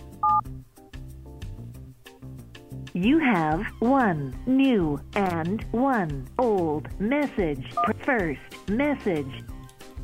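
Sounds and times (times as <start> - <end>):
telephone keypad tone while accessing voicemail: 0.2 - 0.4
speech: 3.0 - 9.5.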